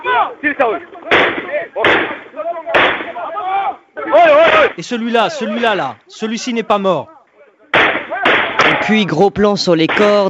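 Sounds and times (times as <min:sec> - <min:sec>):
people shouting: 0:00.0 - 0:05.9, 0:07.1 - 0:09.1
speech: 0:00.4 - 0:01.8, 0:04.8 - 0:07.1, 0:08.8 - 0:10.2
gunshots from uniformed soldiers firing on civilians in film footage: 0:01.1 - 0:03.2, 0:07.7 - 0:09.0, 0:09.8 - 0:10.2.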